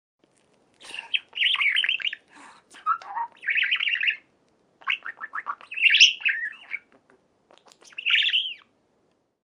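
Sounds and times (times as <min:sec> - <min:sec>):
budgerigar chattering with warbled chirps and squeaky twittering: 0:01.1 - 0:02.2, 0:02.8 - 0:06.9, 0:07.6 - 0:08.7.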